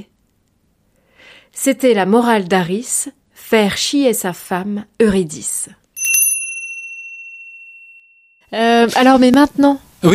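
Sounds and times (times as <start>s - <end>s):
speech: 1.5s - 5.8s, 8.5s - 10.1s
bell chime marking the hour: 6.0s - 8.4s.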